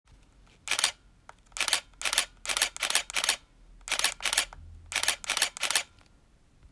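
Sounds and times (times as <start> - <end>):
camera shutter clicks: 0.7 - 1.0, 1.6 - 5.9.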